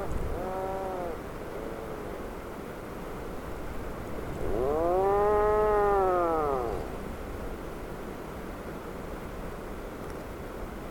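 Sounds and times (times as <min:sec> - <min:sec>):
Atlantic puffin moaning call: 0:00.0 - 0:02.0, 0:04.3 - 0:06.9
steady low noise: 0:00.0 - 0:08.1.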